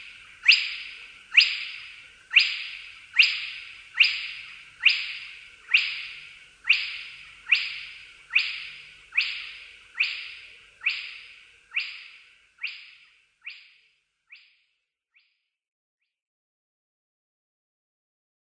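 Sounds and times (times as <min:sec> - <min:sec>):
spotted crake calling whip-like rising whistles: 0:00.0 - 0:14.5.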